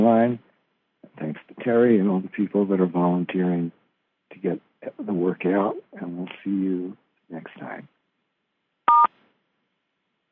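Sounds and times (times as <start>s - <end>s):
speech: 0.0s - 0.5s, 1.2s - 7.9s
phone keypad tone on a conference call line: 8.9s - 9.1s.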